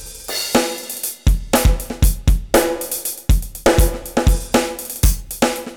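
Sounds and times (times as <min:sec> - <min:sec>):
spin beat at 120 BPM: 0:00.3 - 0:02.0, 0:02.8 - 0:05.6.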